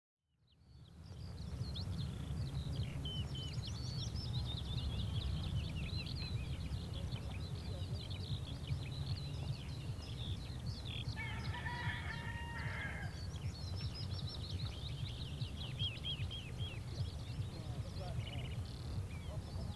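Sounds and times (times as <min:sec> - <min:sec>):
chorus of chirping songbirds: 0:00.5 - 0:19.7
rooster crowing faintly: 0:11.2 - 0:13.2.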